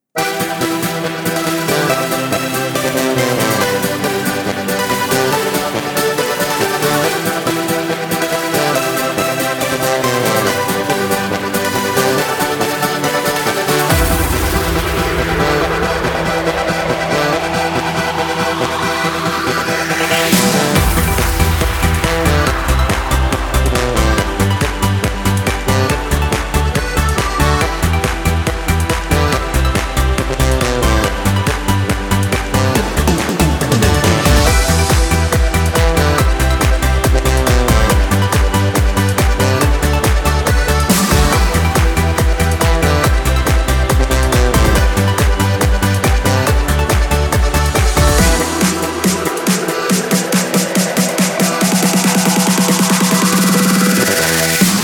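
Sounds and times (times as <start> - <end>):
apres-ski karaoke backing music in G major without choir: 0.2 - 54.8.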